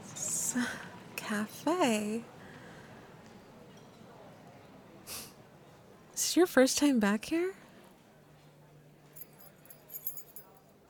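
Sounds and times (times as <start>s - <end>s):
speech: 0.5s - 2.4s, 6.4s - 7.6s
small bunch of keys jingling as set down: 9.2s - 10.6s.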